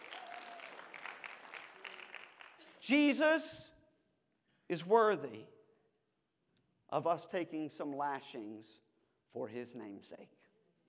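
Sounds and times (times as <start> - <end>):
church congregation clapping during a sermon: 0.0 - 3.1
speech: 2.8 - 3.7, 4.7 - 5.6, 6.9 - 10.4.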